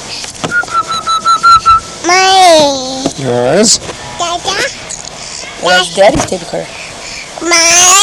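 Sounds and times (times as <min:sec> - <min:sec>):
child whistling: 0:00.5 - 0:02.0
speech: 0:03.2 - 0:04.7, 0:05.6 - 0:06.8, 0:07.4 - 0:07.9.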